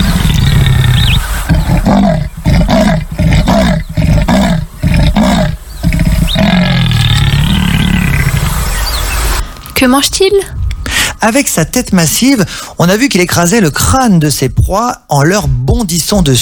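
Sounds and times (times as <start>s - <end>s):
jaguar roaring in deep rasping grunts: 0.0s - 8.7s
speech: 9.8s - 10.6s, 11.2s - 16.4s.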